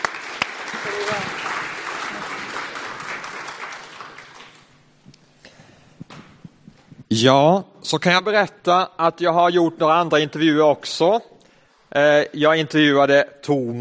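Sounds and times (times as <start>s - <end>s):
audience applause for the actors: 0.0s - 4.8s
speech: 0.8s - 1.8s, 7.1s - 11.3s, 11.9s - 13.7s.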